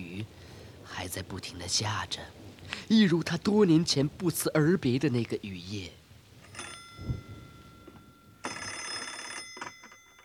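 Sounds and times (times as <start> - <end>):
speech: 1.0 - 6.0
telephone ringing with a bright shrill trill: 6.4 - 10.2.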